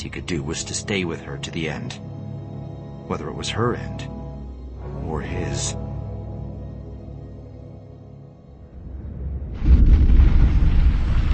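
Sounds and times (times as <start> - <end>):
speech: 0.0 - 2.1, 3.1 - 4.1, 5.1 - 5.9
distant muffled explosion echoing up a cavern: 9.0 - 11.3.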